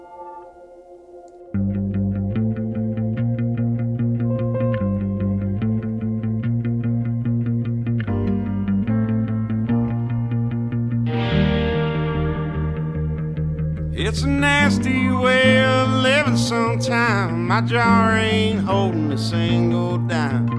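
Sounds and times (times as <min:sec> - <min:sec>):
driving electric guitar with effects-laden tone: 0:01.4 - 0:20.5
person singing: 0:13.9 - 0:20.5
speech: 0:16.8 - 0:20.5.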